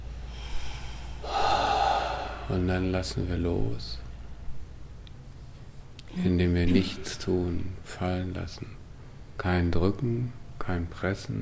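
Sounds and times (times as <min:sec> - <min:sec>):
deep inhalation during a breathing exercise: 0:00.2 - 0:02.7
speech: 0:02.5 - 0:04.1, 0:06.2 - 0:08.8, 0:09.4 - 0:11.3.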